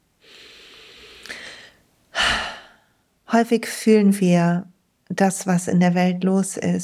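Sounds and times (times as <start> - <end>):
deep breathing in and out in a guided deep-breathing exercise: 0.2 - 3.0
speech: 3.3 - 6.8.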